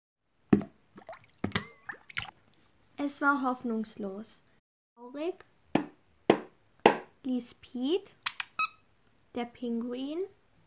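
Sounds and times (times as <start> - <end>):
smaller water plops and bubbly drips: 0.5 - 2.6
sharp splash of something dropping into water: 0.6 - 2.4
speech: 3.0 - 5.5, 7.2 - 8.2, 9.3 - 10.4.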